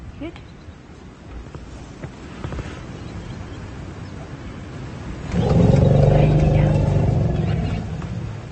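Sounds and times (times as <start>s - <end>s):
wind outdoors: 0.0s - 8.5s
elephants answering with low rumbling calls: 5.2s - 8.5s.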